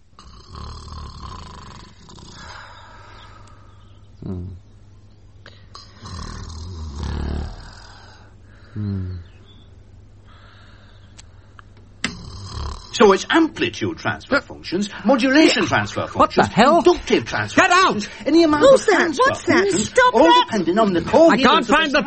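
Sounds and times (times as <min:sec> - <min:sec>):
steady hum: 0:00.0 - 0:22.0
woman snoring lightly in bed: 0:00.2 - 0:03.5, 0:05.7 - 0:09.3, 0:12.0 - 0:13.0
speech: 0:04.2 - 0:04.6, 0:13.0 - 0:22.0.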